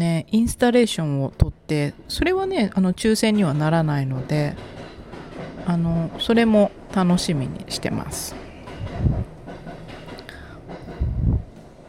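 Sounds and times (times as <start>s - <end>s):
speech: 0.0s - 4.8s, 5.6s - 9.2s
train rumbling past outside an open window: 0.8s - 11.8s.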